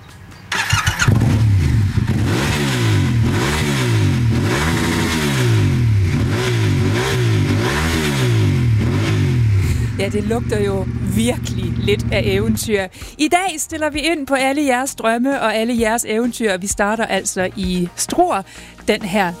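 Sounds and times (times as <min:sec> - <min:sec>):
motorcycle engine starting up and revving: 0:00.5 - 0:12.8
speech: 0:10.0 - 0:19.3.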